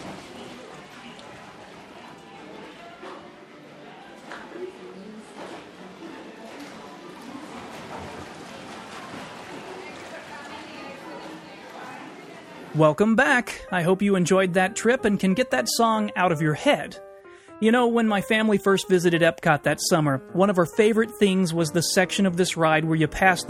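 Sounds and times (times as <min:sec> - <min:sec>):
indistinct crowd chatter on a theme park boat ride: 0:00.0 - 0:12.8
continuous watery wash of a theme park boat ride at Epcot: 0:00.0 - 0:13.0
speech: 0:12.8 - 0:23.4.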